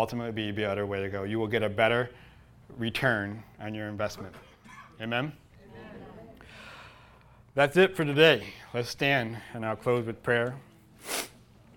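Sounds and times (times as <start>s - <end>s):
speech: 0.0s - 5.4s, 7.6s - 11.3s
short breathy sniff: 11.0s - 11.4s.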